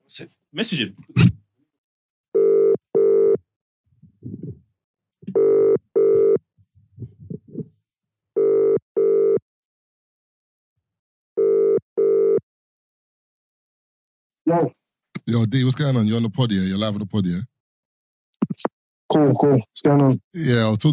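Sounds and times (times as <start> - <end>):
speech: 0.2 - 1.3, 14.5 - 17.5, 19.1 - 20.9
outgoing phone call ringback tone: 2.4 - 3.4, 5.4 - 6.4, 8.4 - 9.4, 11.4 - 12.4.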